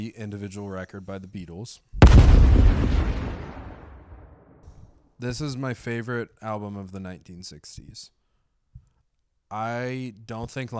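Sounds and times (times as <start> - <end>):
speech: 0.0 - 3.6, 5.2 - 8.2, 9.5 - 10.7
deep explosion sound effect: 2.0 - 4.6.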